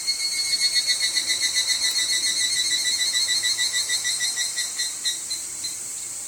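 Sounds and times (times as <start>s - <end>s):
evening cicada higurashi ringing buzz call: 0.0s - 6.2s.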